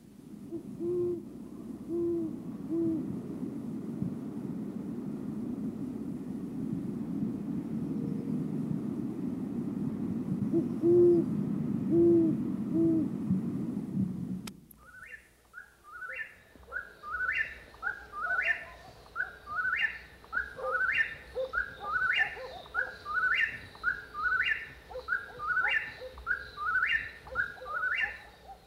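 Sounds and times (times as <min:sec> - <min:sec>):
low steady hum: 0:00.0 - 0:15.5
faint hiss: 0:00.0 - 0:28.6
great horned owl hooting: 0:00.5 - 0:03.1, 0:10.5 - 0:11.3, 0:11.9 - 0:13.1, 0:14.8 - 0:28.6.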